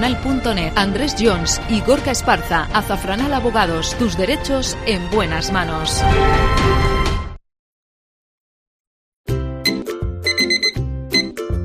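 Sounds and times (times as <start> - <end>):
speech: 0.0 - 6.9
bright melodic alarm clock chime: 9.7 - 11.3.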